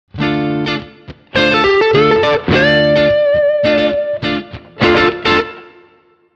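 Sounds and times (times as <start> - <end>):
pentatonic melody: 1.4 - 5.4.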